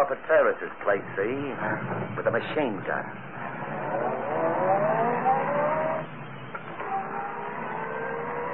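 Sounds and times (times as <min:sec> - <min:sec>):
speech: 0:00.0 - 0:03.4
car engine starting and revving: 0:03.1 - 0:08.5.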